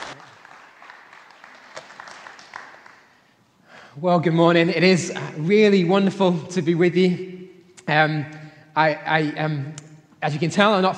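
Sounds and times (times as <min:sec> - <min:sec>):
audience applauding to welcome a guest speaker: 0:00.0 - 0:03.3
speech: 0:04.0 - 0:07.3, 0:07.9 - 0:10.9.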